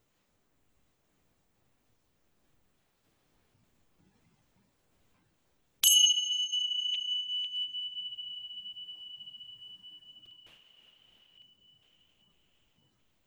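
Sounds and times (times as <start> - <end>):
meditation bell struck and ringing: 5.8 - 11.9.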